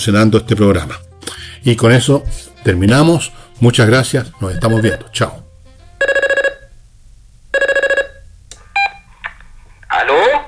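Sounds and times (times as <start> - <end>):
speech: 0.0 - 5.4
telephone ringing on an outgoing call: 4.6 - 5.3, 6.0 - 6.8, 7.5 - 9.0.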